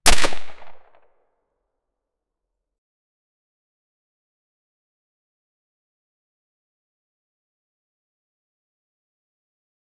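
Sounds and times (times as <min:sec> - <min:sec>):
suppressed silenced gunshot: 0:00.0 - 0:01.0.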